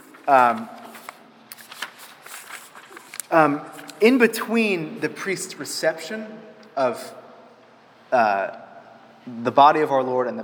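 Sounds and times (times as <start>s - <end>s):
book page turning: 0.0s - 4.1s
speech: 0.3s - 0.8s, 3.3s - 7.2s, 8.1s - 8.6s, 9.3s - 10.4s.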